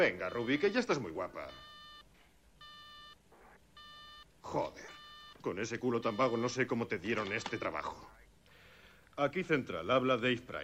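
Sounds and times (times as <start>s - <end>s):
speech: 0.0s - 1.7s, 4.4s - 8.2s, 9.2s - 10.6s
telephone ringing electronically: 0.0s - 8.1s.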